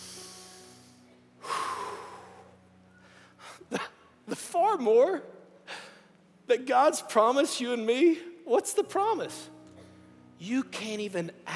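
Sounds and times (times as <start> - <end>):
group of people taking a deep breath together: 0.0 - 3.6
speech: 3.7 - 5.4, 6.5 - 9.6, 10.4 - 11.5.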